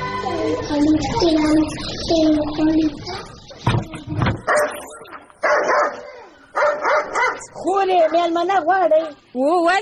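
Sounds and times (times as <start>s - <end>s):
voices: 0.2s - 9.8s
dog barking: 4.4s - 8.3s.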